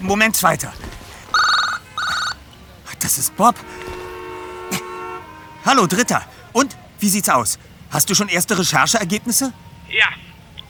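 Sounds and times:
speech: 0.0s - 0.9s, 3.0s - 4.0s, 5.6s - 10.6s
mobile phone ringing with bright trilling electronic bursts: 1.3s - 2.4s.

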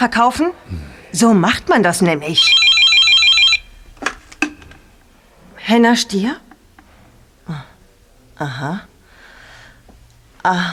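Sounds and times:
speech: 0.0s - 2.6s, 5.7s - 6.4s, 7.5s - 7.7s, 8.4s - 8.9s, 10.4s - 10.7s
mobile phone ringing with a bright melodic ringtone: 2.4s - 3.8s.

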